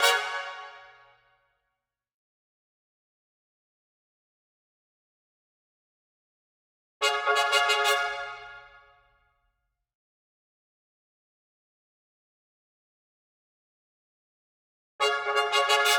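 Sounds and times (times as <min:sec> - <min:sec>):
staccato trumpets: 0:00.0 - 0:01.0, 0:07.0 - 0:08.7, 0:15.0 - 0:15.9.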